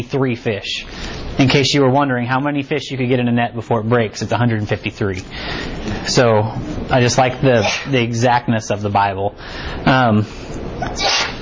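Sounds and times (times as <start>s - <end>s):
speech: 0.0s - 11.4s
person sneezing: 7.6s - 7.9s, 10.8s - 11.4s.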